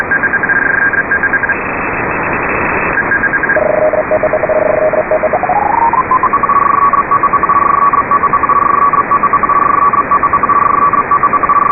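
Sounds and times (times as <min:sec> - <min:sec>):
narrow beacon signal: 0:00.1 - 0:11.6.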